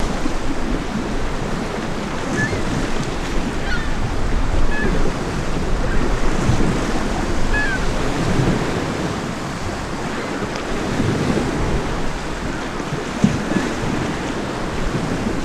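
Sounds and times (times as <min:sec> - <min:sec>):
beach surf: 0:00.0 - 0:15.4.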